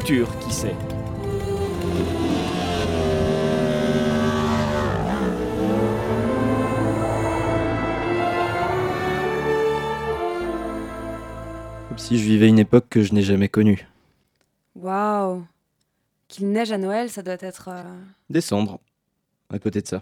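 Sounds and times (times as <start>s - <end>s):
loud motorcycle engine idling, revving and pulling away: 0.0s - 9.9s
speech: 0.1s - 1.0s, 1.8s - 2.4s, 12.0s - 13.9s, 14.8s - 15.5s, 16.3s - 18.9s, 19.5s - 20.0s.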